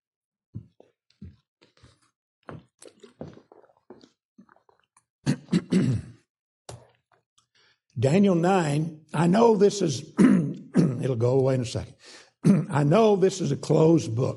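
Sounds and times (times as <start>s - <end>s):
person with a dry throat clearing throat: 5.2s - 6.3s, 10.2s - 11.1s, 12.4s - 12.9s
speech: 8.0s - 10.2s, 11.0s - 14.3s.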